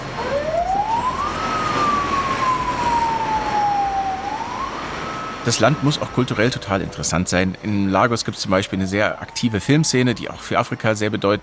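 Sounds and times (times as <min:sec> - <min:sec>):
siren in a busy Lagos street: 0:00.0 - 0:07.8, 0:08.4 - 0:11.4
rumble and hiss of busy city street traffic in Lagos: 0:00.0 - 0:11.4
speech: 0:05.5 - 0:11.4.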